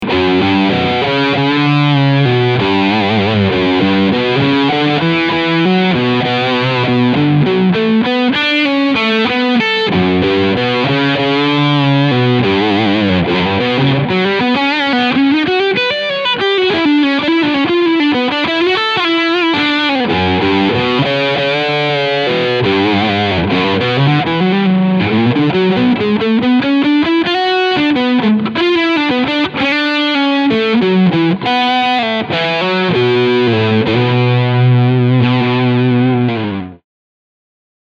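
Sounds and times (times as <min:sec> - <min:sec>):
Cort G 280 electric guitar with overdrive on bridge humbucker: 0:00.0 - 0:36.8.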